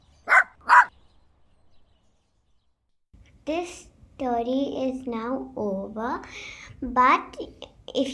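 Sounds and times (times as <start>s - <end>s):
dog barking: 0.3s - 0.9s
speech: 3.4s - 8.1s.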